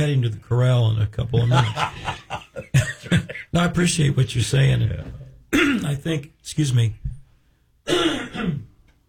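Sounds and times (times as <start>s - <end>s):
speech: 0.0s - 2.8s, 3.6s - 7.1s, 7.9s - 8.6s
laughter: 1.3s - 3.6s
person clearing throat: 5.5s - 5.9s, 7.9s - 8.8s
person coughing harshly: 5.5s - 5.9s, 7.9s - 8.8s.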